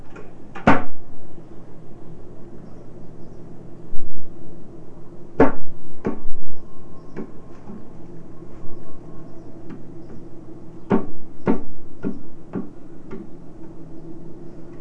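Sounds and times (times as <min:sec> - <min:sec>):
doors banging open and shut: 0:00.0 - 0:01.1, 0:05.4 - 0:06.4, 0:09.6 - 0:13.8
low steady rumble: 0:00.0 - 0:14.7.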